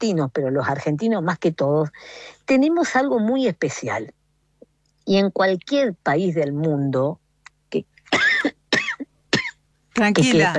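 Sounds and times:
speech: 0:00.0 - 0:04.2, 0:05.1 - 0:08.6, 0:10.0 - 0:10.5
person coughing from allergy: 0:08.2 - 0:09.6.

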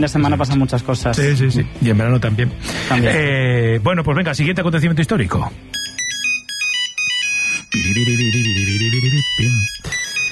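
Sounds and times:
speech: 0:00.0 - 0:05.8
Nokia 3310 monophonic mobile phone ringtone: 0:05.7 - 0:10.2.

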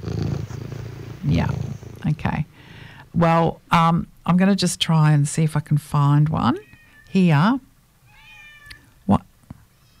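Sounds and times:
low hum: 0:00.0 - 0:09.9
speech: 0:01.4 - 0:02.4, 0:03.2 - 0:07.7, 0:09.1 - 0:09.3
cat meowing: 0:08.1 - 0:08.9.

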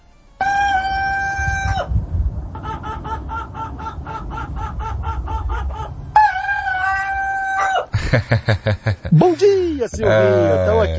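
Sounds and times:
rooster crowing: 0:00.4 - 0:07.9
laughter: 0:07.9 - 0:10.9
speech: 0:08.1 - 0:10.9.

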